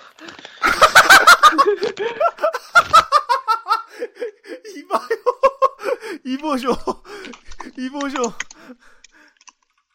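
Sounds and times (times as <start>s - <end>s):
laughter: 0.6s - 7.3s
speech: 6.4s - 7.0s, 7.8s - 8.5s
mouth clicks: 7.2s - 9.7s
crunchy chewing of a snack: 7.2s - 9.9s.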